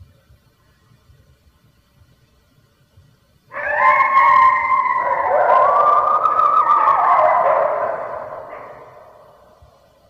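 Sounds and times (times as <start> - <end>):
red wolf howling: 3.5 - 9.6.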